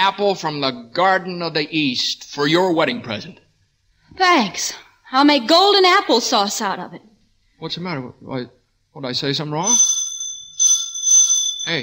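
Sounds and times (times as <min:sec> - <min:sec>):
speech: 0:00.0 - 0:03.4, 0:04.1 - 0:10.0, 0:11.7 - 0:11.8
doorbell ringing in bright shrill bursts: 0:09.6 - 0:11.8.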